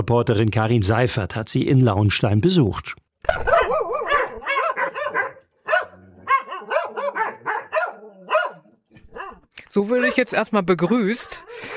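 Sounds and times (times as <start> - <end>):
speech: 0.0 - 4.0, 9.7 - 11.7
several dogs at an animal welfare association in Nauenstein barking excitedly: 3.3 - 9.5, 10.6 - 11.7.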